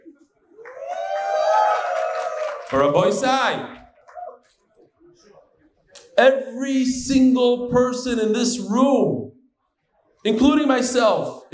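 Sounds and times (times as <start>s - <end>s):
large crowd cheering loudly: 0.5s - 4.4s
speech: 2.7s - 3.8s, 6.2s - 9.3s, 10.2s - 11.5s.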